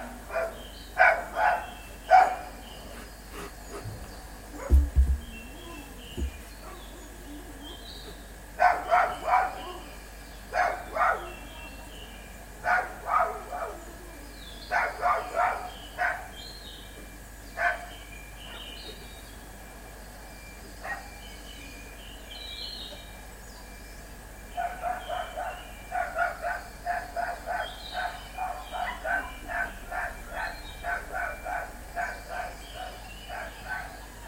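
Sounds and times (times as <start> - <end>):
dog barking: 0.3 - 7.0, 8.6 - 9.9, 10.5 - 11.4, 12.6 - 13.9, 14.7 - 16.4, 17.6 - 18.8, 20.8 - 21.2, 24.6 - 34.2.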